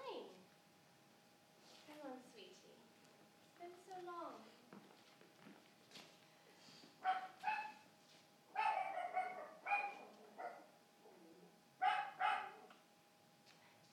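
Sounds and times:
dog barking: 0:07.0 - 0:07.8, 0:08.5 - 0:10.7, 0:11.8 - 0:12.8.

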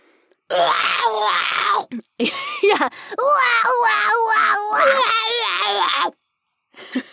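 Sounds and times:
person vocally imitating a scream of someone being electrocuted: 0:00.5 - 0:01.9, 0:03.2 - 0:06.1.

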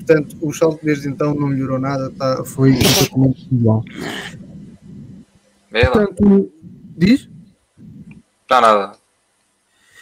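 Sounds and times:
speech: 0:00.1 - 0:04.4, 0:05.7 - 0:07.3, 0:08.5 - 0:09.0
sharp breathy sneeze: 0:02.8 - 0:03.2.

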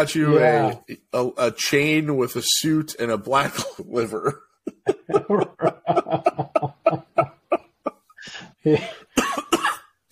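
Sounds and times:
speech: 0:00.0 - 0:04.5, 0:05.1 - 0:06.5, 0:08.2 - 0:09.0
breathy rhythmic laughter: 0:04.7 - 0:09.5
loud harsh coughing: 0:04.7 - 0:10.0.

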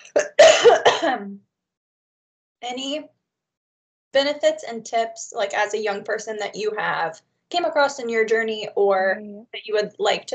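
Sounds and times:
person coughing harshly: 0:00.0 - 0:01.3
speech: 0:01.2 - 0:01.5, 0:02.6 - 0:03.2, 0:04.1 - 0:10.3.

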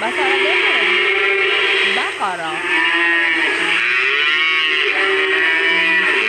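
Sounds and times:
speech: 0:00.0 - 0:00.5, 0:02.2 - 0:03.2
cow mooing: 0:00.0 - 0:06.2.

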